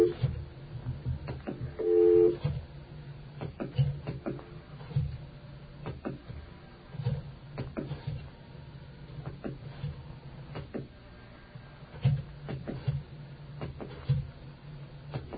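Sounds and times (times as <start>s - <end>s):
telephone dialing tones and clicks on a call line: 0.0s - 0.2s, 1.8s - 2.5s
low steady hum: 0.0s - 15.3s.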